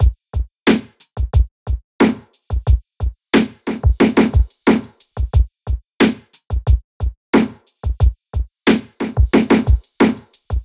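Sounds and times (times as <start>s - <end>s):
full drum loop: 0.0s - 10.6s.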